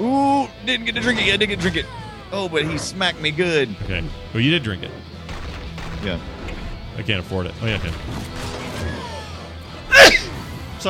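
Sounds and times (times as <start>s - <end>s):
speech: 0.4s - 5.2s, 6.0s - 6.3s, 7.0s - 8.6s
person sneezing: 9.9s - 10.3s.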